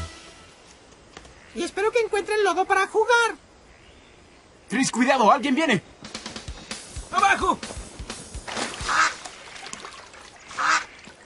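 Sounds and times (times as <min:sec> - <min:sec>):
speech: 0:01.6 - 0:03.4, 0:04.7 - 0:05.9, 0:07.3 - 0:07.8
duck quacking: 0:08.8 - 0:09.6, 0:10.4 - 0:11.1.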